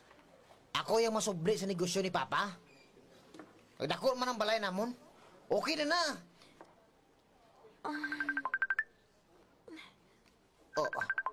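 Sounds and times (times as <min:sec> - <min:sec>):
speech: 0:00.9 - 0:02.7, 0:03.8 - 0:06.3, 0:07.8 - 0:08.2
cellphone ringtone of rapid electronic beeps: 0:08.1 - 0:08.9, 0:10.8 - 0:11.3.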